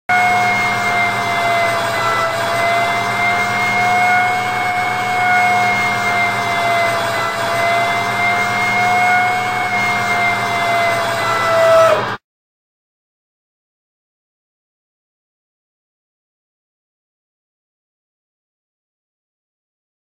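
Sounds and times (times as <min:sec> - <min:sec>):
winch: 0:00.1 - 0:12.2.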